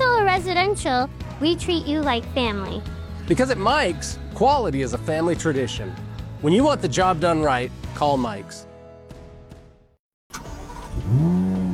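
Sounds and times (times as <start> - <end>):
speech: 0.7 - 8.7
car engine turning over and revving: 10.3 - 11.7.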